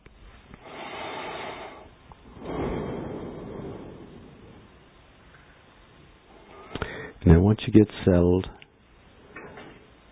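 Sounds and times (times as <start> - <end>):
slow deep breaths during a guided meditation: 0.4 - 7.2
speech: 7.2 - 8.6.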